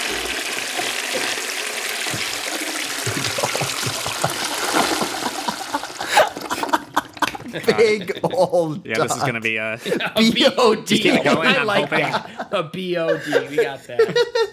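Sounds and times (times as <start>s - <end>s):
toilet flushing with swirling water: 0.0s - 7.7s
laughter: 3.0s - 14.5s
speech: 7.6s - 14.5s.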